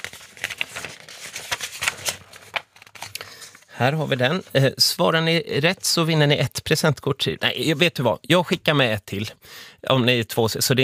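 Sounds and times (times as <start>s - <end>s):
paper pages rustling while flipping through a binder: 0.0s - 4.6s
speech: 3.8s - 10.8s.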